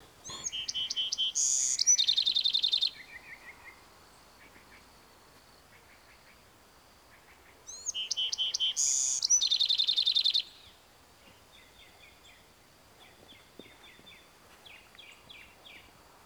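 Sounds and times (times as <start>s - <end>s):
Bewick's wren song: 0.2s - 3.3s, 7.7s - 10.6s.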